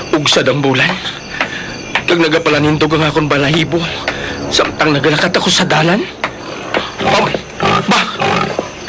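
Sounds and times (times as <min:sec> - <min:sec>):
speech: 0:00.2 - 0:01.2, 0:02.1 - 0:06.2
pig grunting and squealing: 0:02.3 - 0:08.8.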